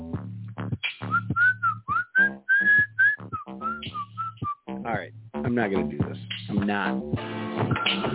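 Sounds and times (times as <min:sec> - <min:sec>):
person whistling a wobbly broken tune: 0:01.1 - 0:04.6
speech: 0:04.9 - 0:08.1.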